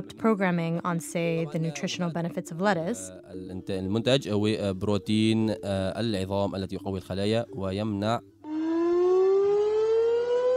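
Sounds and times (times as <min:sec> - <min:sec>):
speech: 0:00.0 - 0:08.3
air raid siren wailing, warning of airstrikes: 0:08.4 - 0:10.5.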